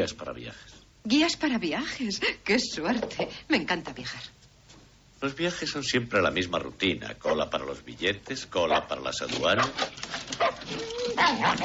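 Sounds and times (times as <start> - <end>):
speech: 0.0 - 4.4, 5.2 - 11.6
hiss: 0.0 - 11.6
dog barking: 8.7 - 9.0, 9.6 - 11.6
dog whining: 9.6 - 11.6.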